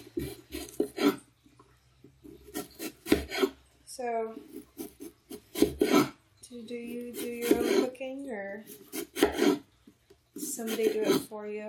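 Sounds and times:
knife dicing an onion on a cutting board: 0.0s - 1.2s, 2.4s - 3.6s, 4.5s - 6.2s, 7.1s - 7.9s, 8.7s - 9.6s, 10.4s - 11.3s
knife scraping strokes on a cutting board: 0.0s - 1.3s, 2.2s - 3.6s, 4.4s - 6.2s, 6.8s - 8.0s, 8.6s - 9.7s, 10.4s - 11.3s
speech: 4.0s - 4.7s, 6.6s - 9.6s, 10.6s - 11.6s.

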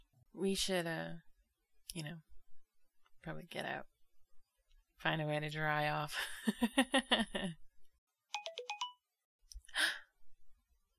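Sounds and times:
speech: 0.4s - 1.3s, 2.0s - 2.3s, 3.2s - 3.9s, 5.0s - 7.6s
mobile phone ringtone quick bright electronic melody: 8.3s - 9.1s.

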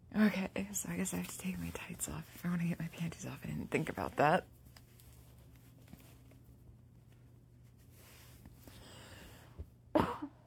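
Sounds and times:
low room hum: 0.0s - 10.4s
speech: 0.3s - 4.6s
rustling: 1.0s - 8.8s
person coughing: 10.0s - 10.4s.

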